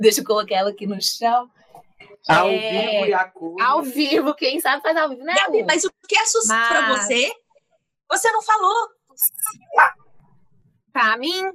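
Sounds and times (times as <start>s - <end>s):
speech: 0.0s - 7.4s, 8.1s - 10.0s, 11.0s - 11.5s
high-pitched hissy sounds: 9.2s - 9.8s
dog barking: 9.6s - 10.0s.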